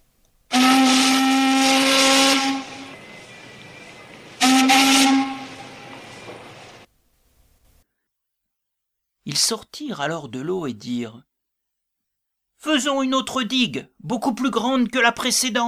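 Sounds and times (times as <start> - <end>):
warship steam whistle blasts: 0.5 - 6.8
speech: 9.4 - 11.3, 12.6 - 15.6.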